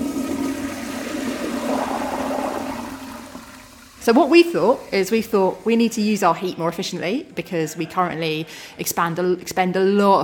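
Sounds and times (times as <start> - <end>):
toilet flushing: 0.0 - 7.0
speech: 4.0 - 10.2.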